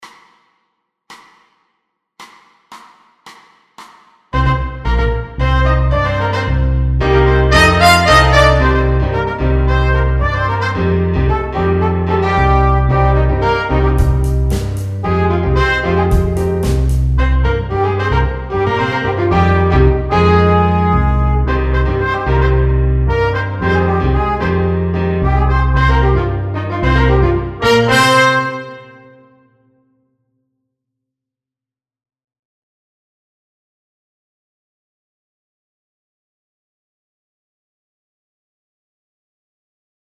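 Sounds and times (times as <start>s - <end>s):
jazz funk etude without drums: 4.4s - 28.7s.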